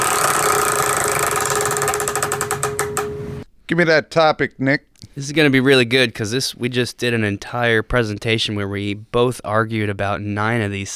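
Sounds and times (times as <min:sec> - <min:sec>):
prize wheel spinning with rapid ticking: 0:00.0 - 0:03.3
speech: 0:03.7 - 0:10.9.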